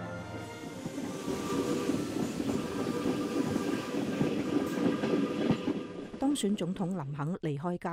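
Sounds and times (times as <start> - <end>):
loud rumble of train wheels running over rails with rhythmic clickety-clack: 0.3 - 6.9
speech: 6.4 - 7.9.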